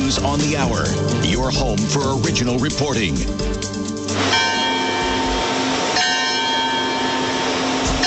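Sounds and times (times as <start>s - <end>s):
speech: 0.1s - 3.8s
dense outdoor wash of sound: 4.1s - 8.0s
large church bells pealing at the Vatican: 4.2s - 8.0s.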